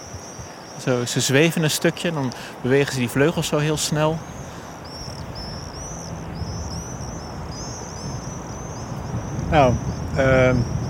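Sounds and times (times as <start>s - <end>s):
steady hiss: 0.0s - 10.8s
speech: 0.8s - 4.4s, 9.5s - 10.7s
flock of swarming birds screaming overhead: 3.3s - 10.8s.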